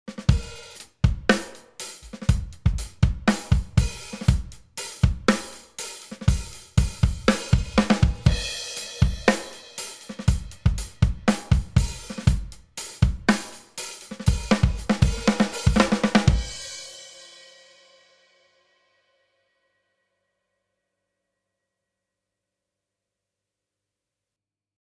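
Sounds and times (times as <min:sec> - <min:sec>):
compressed drums without sidechain EQ: 0:00.1 - 0:16.8.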